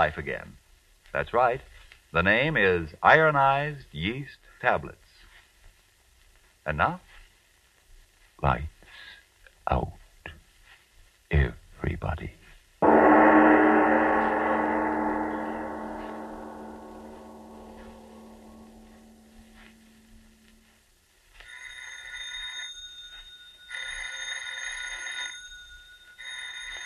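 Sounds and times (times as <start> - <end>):
speech: 0.0 - 5.0, 6.6 - 7.1, 8.4 - 8.7, 9.7 - 10.0, 11.3 - 12.4
deep resonant gong-like tone: 12.8 - 20.6
telephone bell ringing: 21.4 - 26.8.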